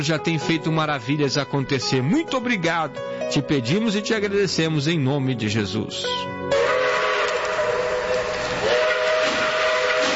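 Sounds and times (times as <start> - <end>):
speech: 0.0 - 6.6
steam train whistle blowing in the mountains of Minas Gerais: 6.5 - 10.1.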